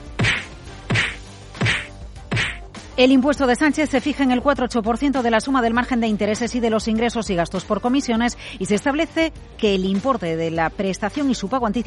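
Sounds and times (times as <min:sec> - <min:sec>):
sharp slaps: 0:00.1 - 0:02.7
speech: 0:03.0 - 0:11.8.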